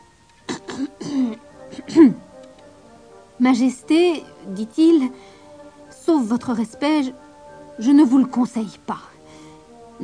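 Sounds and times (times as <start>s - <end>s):
man clearing his throat with gravelly voiced grunts: 0.5s - 2.3s
speech: 3.4s - 5.4s, 6.1s - 7.2s, 7.8s - 9.1s.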